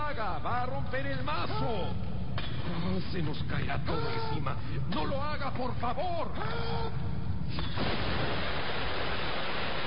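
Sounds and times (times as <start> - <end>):
speech: 0.1 - 2.1, 2.7 - 8.7
powerful jet of water bursting out and gushing: 7.8 - 9.8.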